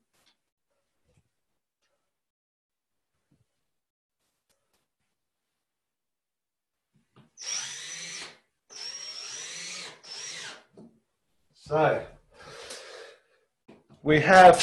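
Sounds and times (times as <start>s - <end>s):
power drill driving screws into a hinge: 7.4s - 10.8s
speech: 11.7s - 12.1s, 14.0s - 14.6s.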